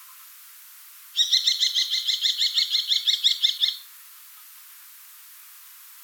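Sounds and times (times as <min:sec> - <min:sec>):
common kestrel Falco tinnunculus call: 0:01.2 - 0:03.8.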